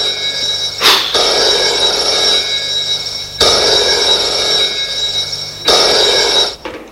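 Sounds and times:
telephone ringing: 0.0s - 6.8s.

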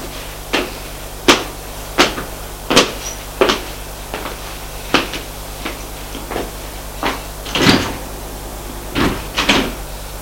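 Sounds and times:
elevator low mechanical hum: 0.0s - 10.1s
elevator clunks and door knocks: 7.1s - 9.8s.

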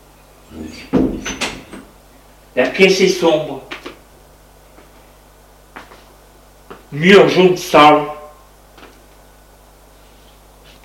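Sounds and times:
door opened and shut as a police officer enters a room: 0.7s - 1.9s
police officer knocking on a door: 0.9s - 1.6s
speech: 2.6s - 3.7s, 7.0s - 8.2s.

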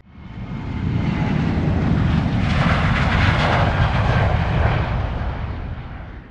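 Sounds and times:
airplane engine roar in flight: 0.0s - 6.2s.

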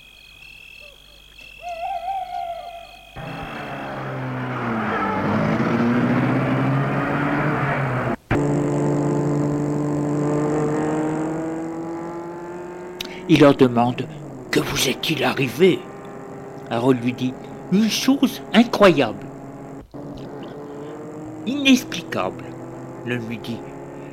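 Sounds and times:
faint tonal call: 0.8s - 4.0s
car engine starting and revving as it pulls away: 3.2s - 24.1s
speech: 13.3s - 15.9s, 16.7s - 19.3s, 21.5s - 23.7s.

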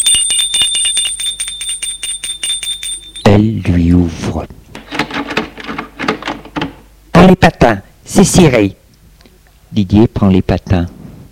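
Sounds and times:
doorbell ringing with a bright metallic jangle: 0.0s - 3.5s
speech: 3.4s - 4.6s, 7.6s - 8.8s, 9.7s - 11.0s.

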